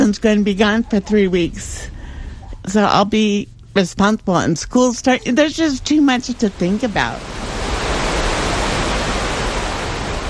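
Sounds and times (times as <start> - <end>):
speech: 0.1 - 2.0, 2.6 - 7.5
river water rushing behind a flood wall: 7.2 - 10.2.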